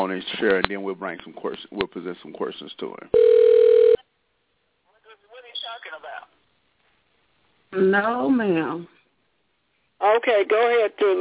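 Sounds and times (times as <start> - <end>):
speech: 0.0 - 3.8, 7.7 - 9.0, 10.0 - 11.1
telephone ringback tone on an outgoing call: 3.2 - 4.0.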